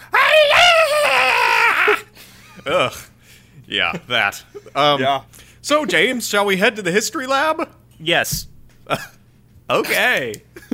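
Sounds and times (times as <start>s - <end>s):
voice imitating a blood-curdling scream: 0.0s - 2.1s
speech: 2.6s - 3.1s, 3.7s - 10.7s.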